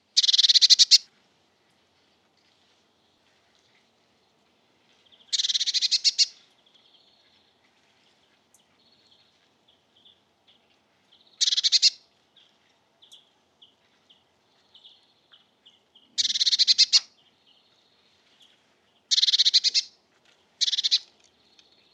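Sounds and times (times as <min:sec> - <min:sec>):
Cyanistes caeruleus calling: 0:00.2 - 0:01.0, 0:05.3 - 0:06.4, 0:11.3 - 0:12.0, 0:16.2 - 0:17.1, 0:19.1 - 0:19.9, 0:20.6 - 0:21.7.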